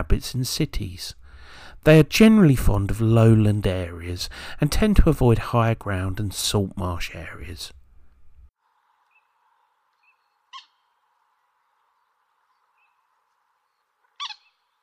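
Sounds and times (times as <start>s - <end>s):
speech: 0.0s - 7.8s
outdoor hiss: 0.0s - 14.8s
moorhen calls: 10.0s - 10.9s, 14.1s - 14.7s
moorhen clucks: 14.1s - 14.6s.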